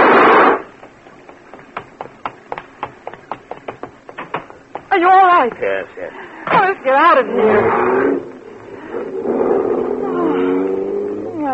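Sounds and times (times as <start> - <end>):
speech: 5.0 - 8.3
car engine droning as car is driven off a barge: 7.4 - 11.5.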